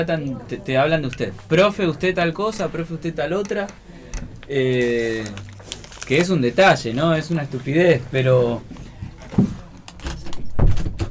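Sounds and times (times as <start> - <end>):
speech: 0.0 - 5.5, 6.1 - 9.6
door closing thud: 9.4 - 11.0.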